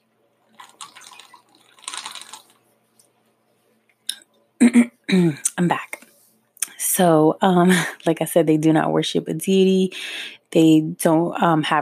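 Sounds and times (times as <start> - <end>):
person sipping and swallowing water: 0.5 - 2.6
speech: 4.6 - 5.9, 7.0 - 11.7.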